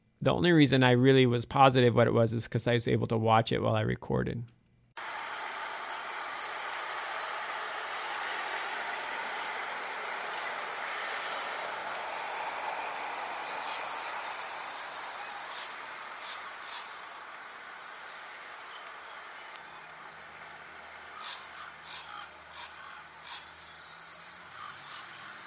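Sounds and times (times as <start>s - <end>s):
speech: 0.2s - 4.6s
orange-crowned warbler giving steady trills: 5.1s - 25.4s.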